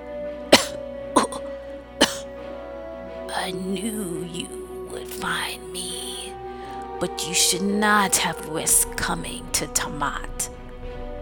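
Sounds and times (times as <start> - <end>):
sharp harsh coughs: 0.5 - 2.3
speech: 3.4 - 6.1, 7.0 - 10.6.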